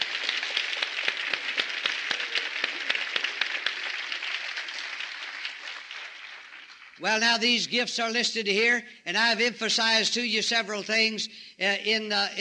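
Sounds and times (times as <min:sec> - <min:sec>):
audience applause: 0:00.0 - 0:07.6
speech: 0:07.0 - 0:12.3.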